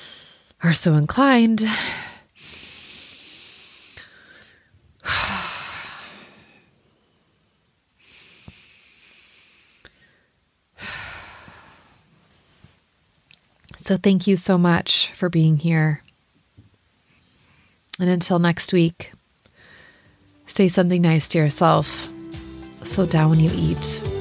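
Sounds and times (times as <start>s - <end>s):
speech: 0.6s - 2.0s, 13.9s - 16.0s, 18.0s - 19.2s, 20.5s - 22.1s, 22.8s - 24.1s
deep breaths in and out during a calming moment: 1.7s - 7.3s, 8.0s - 12.1s, 19.5s - 20.3s.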